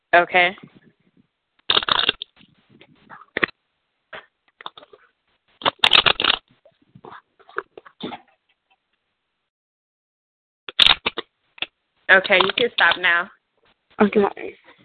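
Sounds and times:
speech: 0.1s - 0.7s, 12.1s - 13.4s, 14.0s - 14.6s
deck of cards being shuffled: 1.6s - 3.5s, 4.6s - 8.0s, 10.7s - 13.1s.

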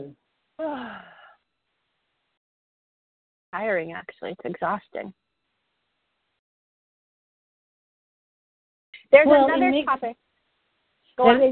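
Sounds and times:
speech: 0.0s - 1.2s, 3.6s - 5.2s, 9.1s - 10.2s, 11.2s - 11.5s
person yawning: 0.6s - 1.3s.

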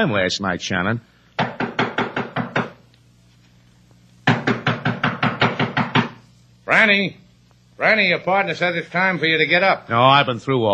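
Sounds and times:
speech: 0.0s - 1.1s, 6.8s - 7.2s, 7.8s - 10.7s
rapid loud knocking on a door: 1.4s - 2.8s, 4.2s - 6.2s.

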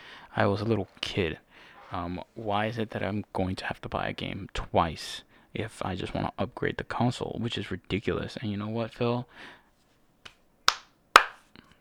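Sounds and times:
speech: 0.4s - 9.6s
sharp loud hand claps: 10.2s - 11.5s.

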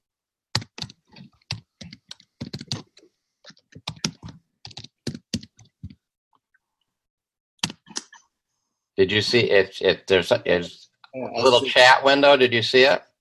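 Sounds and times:
keystrokes on a computer keyboard typing a chat message: 0.5s - 6.0s, 7.6s - 8.2s
speech: 9.0s - 13.1s.

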